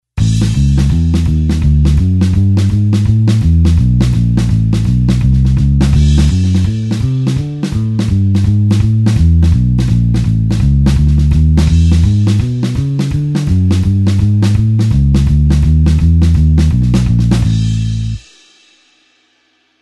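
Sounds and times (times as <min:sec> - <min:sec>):
four-beat blues bassline in A: 0:00.2 - 0:18.2.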